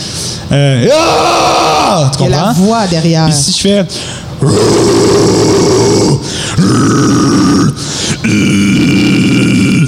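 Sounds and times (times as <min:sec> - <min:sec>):
speech: 0:00.5 - 0:09.8
person taking brief breaths: 0:03.9 - 0:04.4, 0:06.2 - 0:06.6, 0:07.8 - 0:08.2
deep rough distorted vocal growl from a person's voice: 0:04.4 - 0:09.8.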